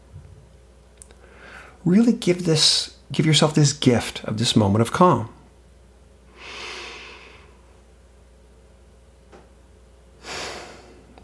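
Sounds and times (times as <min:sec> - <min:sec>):
slow breath in: 0:01.2 - 0:01.8, 0:06.3 - 0:07.6
speech: 0:01.8 - 0:05.4.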